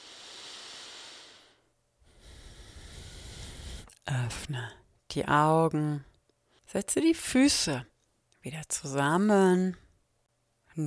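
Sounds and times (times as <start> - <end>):
deep slow breathing during a guided yoga practice: 0.0 - 4.0
speech: 4.1 - 6.1, 6.7 - 9.8.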